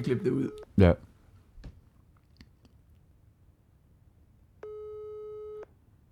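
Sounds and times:
speech: 0.0s - 1.1s
telephone ringback tone beep over a speakerphone: 4.6s - 5.7s.

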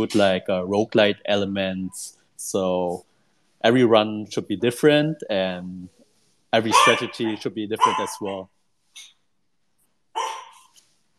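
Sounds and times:
speech: 0.0s - 9.1s
pet dog barking: 6.7s - 8.4s, 10.2s - 10.7s.

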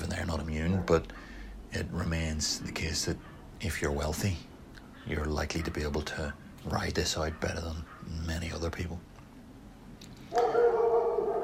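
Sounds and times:
dog barking in a neighbouring garden: 0.5s - 1.4s, 3.1s - 3.5s, 5.5s - 6.0s, 7.2s - 8.2s, 10.3s - 11.4s
speech: 0.8s - 9.1s.

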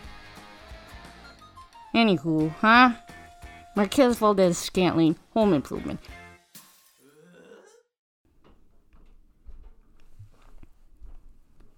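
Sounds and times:
speech: 2.0s - 3.0s, 3.8s - 6.2s
fainter knocks and creaks: 8.3s - 11.2s
heavy footsteps of person stomping around upstairs: 8.4s - 11.7s.

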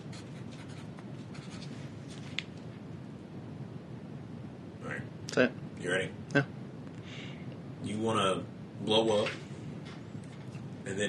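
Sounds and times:
pen scratching while writing something down: 0.0s - 1.7s
speech: 5.4s - 6.6s, 7.8s - 9.4s.

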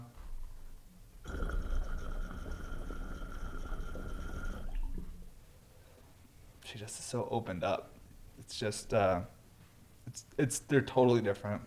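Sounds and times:
water bubbling through percolators: 1.2s - 5.3s
speech: 6.7s - 7.9s, 8.5s - 9.4s, 10.1s - 11.6s.

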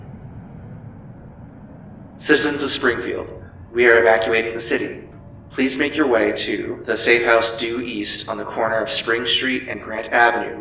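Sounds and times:
helicopter jet engines roaring: 0.0s - 10.5s
speech: 2.2s - 10.5s.

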